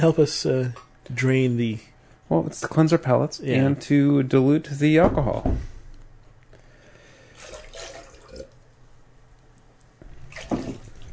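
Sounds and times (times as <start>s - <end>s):
speech: 0.0s - 5.7s
quiet hum: 0.0s - 11.1s
water poured from a pitcher into glasses: 7.4s - 8.6s.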